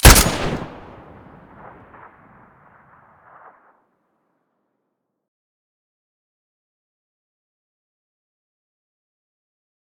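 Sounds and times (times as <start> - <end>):
SVU rifle muzzle blast: 0.0 - 2.1.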